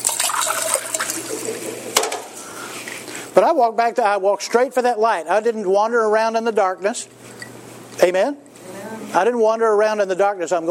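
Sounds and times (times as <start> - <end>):
water pouring into a container: 0.0 - 2.0
speech: 3.4 - 7.2, 8.0 - 8.4, 9.1 - 10.6.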